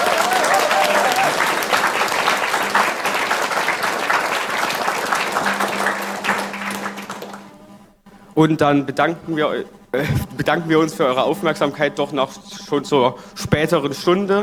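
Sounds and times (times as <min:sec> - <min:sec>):
laughter: 0:00.0 - 0:07.8, 0:09.1 - 0:14.4
crowd applauding with dense clapping: 0:00.0 - 0:07.9
faint tonal hum: 0:00.0 - 0:14.4
speech: 0:08.4 - 0:14.4.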